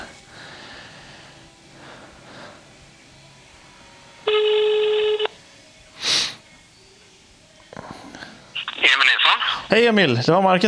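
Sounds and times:
buzzy telephone ringback tone on an outgoing call: 4.2 - 5.4
speech: 9.7 - 10.6.

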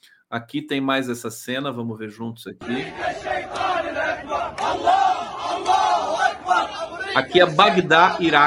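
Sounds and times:
speech: 0.0 - 8.4
constant roar of many voices in a marching crowd: 2.6 - 8.4
large marching crowd chanting in unison in Baghdad Iraq: 2.6 - 8.4.

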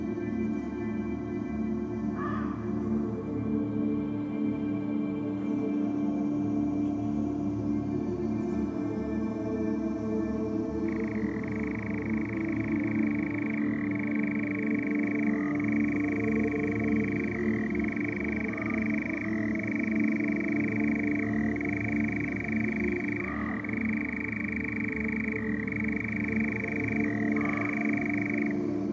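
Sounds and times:
dense low night hum: 0.0 - 28.9
nightjar churring on a summer night: 10.8 - 28.9.

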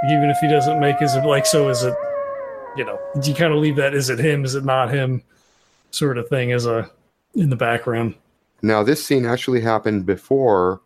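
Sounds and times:
speech: 0.0 - 2.1, 2.8 - 10.8
coyote howling in the distance: 0.0 - 4.7.

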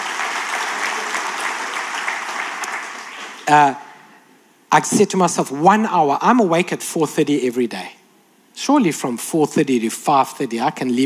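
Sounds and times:
audience clapping in applause: 0.0 - 3.6
speech: 3.5 - 3.8, 4.7 - 8.0, 8.6 - 11.0.

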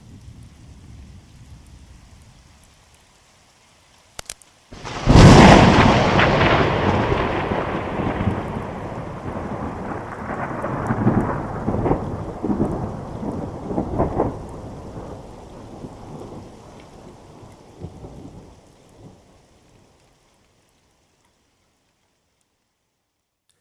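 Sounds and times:
steady rain: 0.0 - 23.5
thunder crack and rumble during a rainstorm: 4.8 - 19.2.

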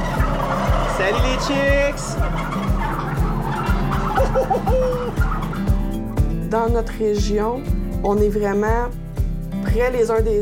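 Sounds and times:
turkey gobbling: 0.0 - 6.0
low rhythmic thumping in a barn: 0.0 - 10.4
speech: 1.0 - 2.9, 4.3 - 5.3, 6.5 - 9.0, 9.7 - 10.4
laughter: 3.8 - 5.5.

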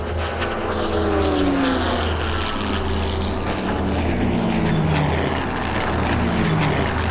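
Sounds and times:
old propeller plane engine droning in flight: 0.0 - 7.0.

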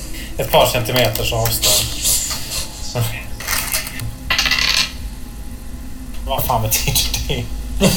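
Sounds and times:
speech: 0.4 - 2.0, 2.9 - 3.2, 6.3 - 7.9
die clattering across a hard tabletop: 3.4 - 5.0.

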